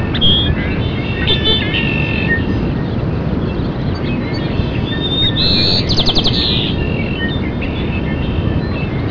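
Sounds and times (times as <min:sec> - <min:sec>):
steady low rumbling background noise: 0:00.0 - 0:09.1
bird chirping and whistling: 0:00.1 - 0:02.5, 0:04.3 - 0:07.4.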